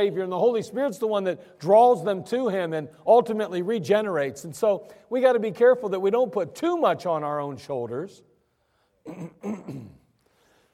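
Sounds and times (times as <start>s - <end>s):
speech: 0.0s - 8.3s, 9.0s - 10.0s
person coughing: 9.1s - 10.1s.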